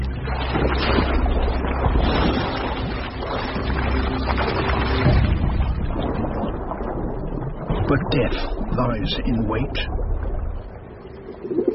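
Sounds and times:
low rumble of river water in Albi, France: 0:00.0 - 0:11.7
speech: 0:07.9 - 0:10.0
pigeons cooing while bathing in the river in Albi, France: 0:11.4 - 0:11.7.

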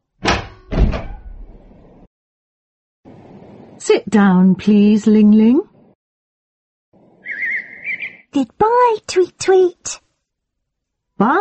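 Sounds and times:
door opening with heavy thuds: 0:00.1 - 0:01.7
speech: 0:03.8 - 0:05.7, 0:08.4 - 0:10.0, 0:11.2 - 0:11.3.

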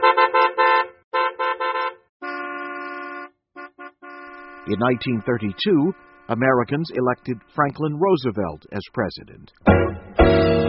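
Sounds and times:
old-fashioned motor car horn honking: 0:00.0 - 0:06.6
speech: 0:04.7 - 0:10.0.

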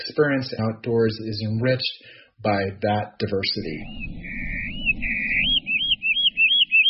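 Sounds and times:
speech: 0:00.0 - 0:04.4
low rumble: 0:03.6 - 0:06.8
hermit warbler singing: 0:03.7 - 0:06.8.

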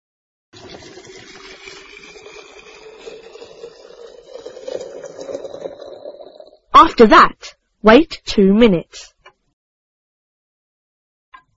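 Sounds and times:
boiling water pouring into a teapot holding tea: 0:00.6 - 0:06.7
speech: 0:06.8 - 0:09.1.

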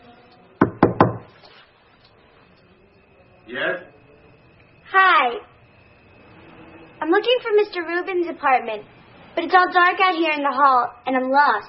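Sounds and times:
firm knocking on a door in a dark hallway: 0:00.6 - 0:01.3
speech: 0:03.5 - 0:03.9, 0:07.1 - 0:11.6.

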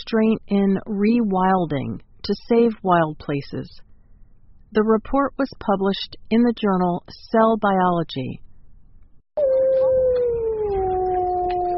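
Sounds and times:
speech: 0:00.0 - 0:03.9, 0:04.7 - 0:08.4
faint low rumbling: 0:09.4 - 0:11.7
wolf howling: 0:09.4 - 0:11.7.

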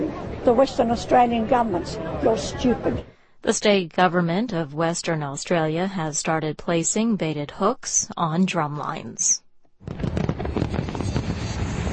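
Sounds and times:
speech: 0:00.4 - 0:10.2
fireworks display over Victoria Harbour in Hong Kong for Chinese New Year: 0:09.8 - 0:11.9.

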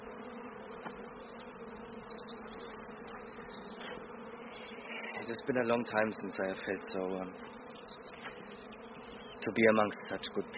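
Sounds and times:
worker bees buzzing around a hive: 0:00.0 - 0:10.5
speech: 0:05.3 - 0:07.5, 0:09.4 - 0:10.5.

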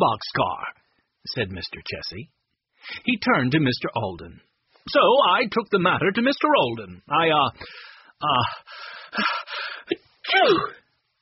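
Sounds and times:
speech: 0:00.0 - 0:10.8
voice acting out a sneeze: 0:09.9 - 0:10.9.

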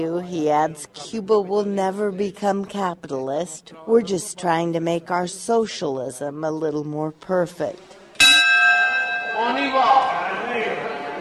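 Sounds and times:
speech: 0:00.0 - 0:08.0, 0:09.4 - 0:10.8
church bell ringing: 0:08.2 - 0:10.3.

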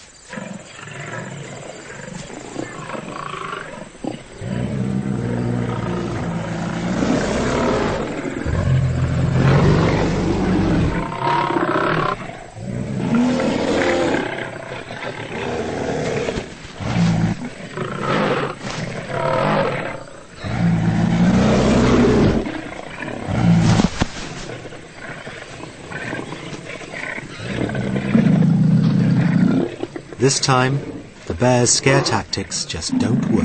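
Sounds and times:
several lions roaring and snarling in a fight over a carcass: 0:00.3 - 0:33.4
speech: 0:30.2 - 0:33.4.

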